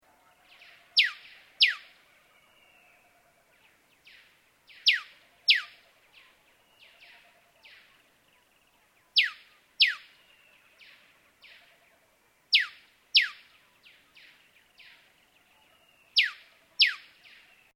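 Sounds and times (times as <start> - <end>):
yellow robin: 0.0 - 17.7.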